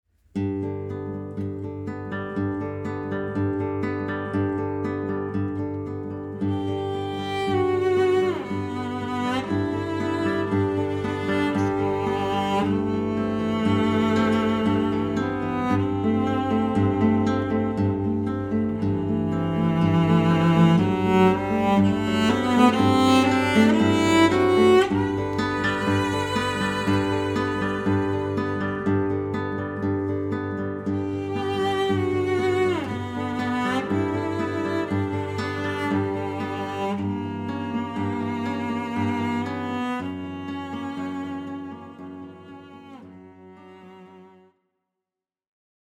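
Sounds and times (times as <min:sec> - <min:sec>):
guitar: 0:00.2 - 0:44.5
cello: 0:00.6 - 0:44.6.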